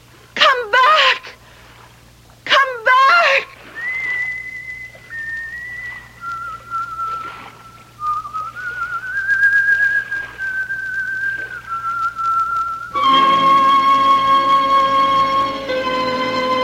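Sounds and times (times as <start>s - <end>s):
faint low hum: 0.0s - 16.6s
person whistling a slow wandering tune: 3.8s - 15.9s.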